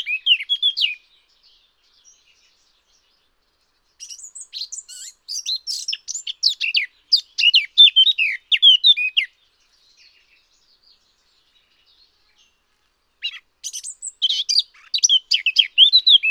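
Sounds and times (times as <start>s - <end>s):
Eurasian blackcap Sylvia atricapilla song: 0.0s - 1.0s, 3.9s - 11.0s, 13.2s - 16.2s.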